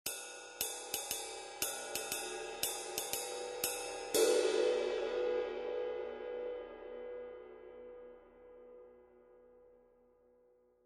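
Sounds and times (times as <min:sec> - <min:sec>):
20in custom dry ride cymbal: 0:00.1 - 0:06.4.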